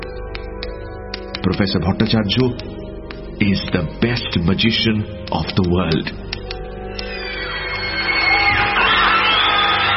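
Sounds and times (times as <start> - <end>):
speech: 1.4 - 2.7, 3.4 - 6.2
audience at a magic show cheering and shouting: 7.0 - 9.9
rising whooping cries: 7.0 - 9.9.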